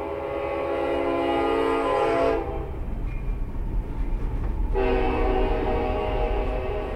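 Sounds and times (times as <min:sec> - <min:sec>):
freight train horn blaring in long loud blasts: 0:00.0 - 0:02.8, 0:04.7 - 0:06.9
freight train rumbling past on a railroad main line: 0:00.0 - 0:06.9.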